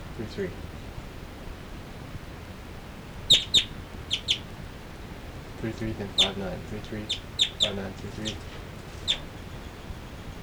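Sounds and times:
speech: 0:00.2 - 0:00.8, 0:05.6 - 0:08.6
two birds chirping while flying from perch to perch: 0:02.8 - 0:10.4.

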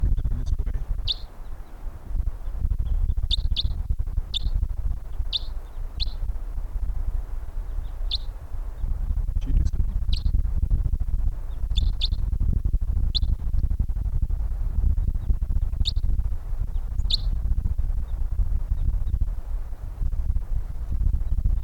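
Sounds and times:
person asking a brief spoken question: 0:00.0 - 0:01.0, 0:09.4 - 0:09.9
low rumble of wind buffeting the microphone: 0:00.0 - 0:21.6
thin high wild bird calls: 0:00.4 - 0:06.3, 0:07.6 - 0:09.0, 0:11.4 - 0:12.2, 0:16.7 - 0:17.3.

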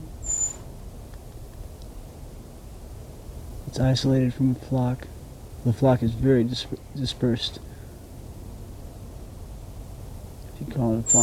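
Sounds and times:
brown creeper giving a thin high-pitched call: 0:00.0 - 0:00.7
quiet low outdoor rumble: 0:00.0 - 0:11.2
speech: 0:03.7 - 0:07.7, 0:10.8 - 0:11.2.

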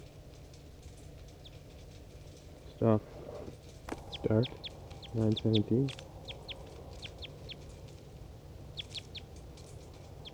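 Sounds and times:
low rumble: 0:00.0 - 0:10.3
wild bird chirping: 0:02.2 - 0:10.3
speech: 0:02.8 - 0:03.2, 0:04.3 - 0:06.1.

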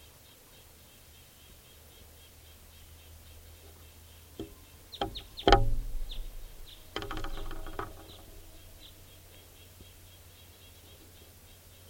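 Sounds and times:
harsher buzzier alternate type two bird calls: 0:00.0 - 0:11.8
bird in a tree giving short high alarm notes: 0:02.7 - 0:11.0
low steady rumble: 0:03.0 - 0:10.4
bird in a tree tooting: 0:04.4 - 0:10.0.

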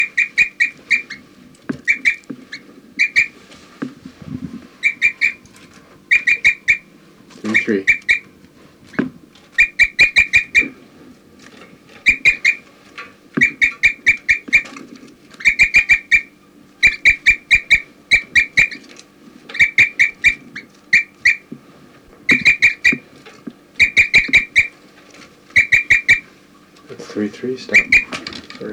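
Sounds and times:
bird chirping and giving flight calls: 0:00.0 - 0:10.8, 0:12.0 - 0:12.7, 0:13.4 - 0:14.8, 0:15.4 - 0:18.9, 0:19.5 - 0:21.6, 0:22.2 - 0:23.1, 0:23.7 - 0:24.8, 0:25.5 - 0:26.4, 0:27.6 - 0:28.7
speech: 0:07.7 - 0:07.9.

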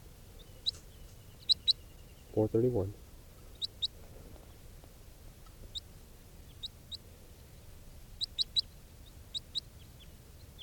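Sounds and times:
background hiss: 0:00.0 - 0:10.6
captive juvenile crossbill chip calls: 0:00.4 - 0:02.4, 0:03.5 - 0:04.0, 0:08.2 - 0:09.8
speech: 0:02.4 - 0:03.0.

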